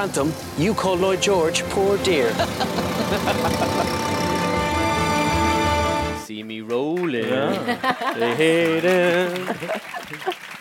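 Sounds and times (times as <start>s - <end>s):
speech: 0.0s - 4.2s, 6.7s - 10.5s
vintage car engine running: 0.0s - 5.3s
laughter: 2.2s - 4.1s, 7.2s - 10.6s.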